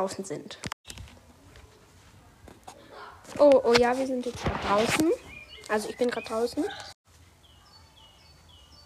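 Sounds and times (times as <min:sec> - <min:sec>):
speech: 0:00.0 - 0:01.0, 0:03.3 - 0:06.9
several birds chirping outdoors in short thin calls: 0:04.7 - 0:08.8.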